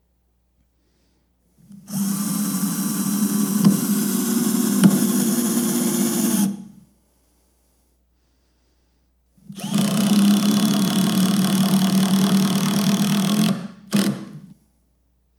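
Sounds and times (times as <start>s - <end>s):
power drill driving a screw: 1.9s - 6.6s, 9.6s - 14.5s.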